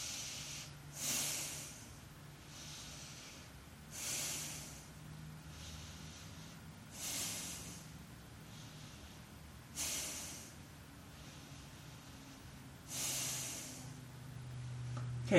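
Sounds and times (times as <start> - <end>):
forceful hissing exhales during a yoga pose: 0.0 - 10.6, 11.2 - 14.0
soft airy inhales during a yoga pose: 0.0 - 14.2
faint steady hum: 0.0 - 15.3.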